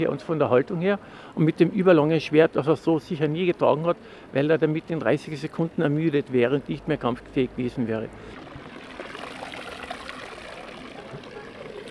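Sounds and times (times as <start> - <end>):
speech: 0.0 - 8.4
fountain water splashing and burbling: 7.6 - 11.8
faint voices murmuring: 10.7 - 11.8.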